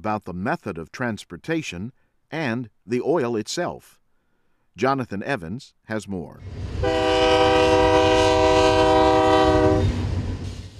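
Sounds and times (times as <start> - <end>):
speech: 0.0 - 4.0, 4.8 - 8.0
low rumble of rolling freight train cars: 6.4 - 10.7
freight train horn blaring: 6.8 - 10.0.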